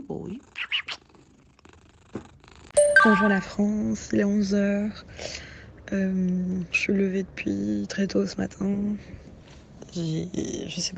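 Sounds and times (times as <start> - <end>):
cat purring: 0.0 - 2.8
speech: 0.1 - 0.7, 3.0 - 9.2, 10.0 - 10.9.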